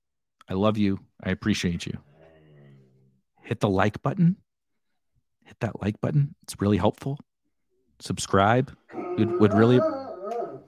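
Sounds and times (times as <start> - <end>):
speech: 0.5 - 2.1, 3.5 - 4.4, 5.5 - 7.3, 8.0 - 10.0
dog barking and howling: 8.9 - 10.6.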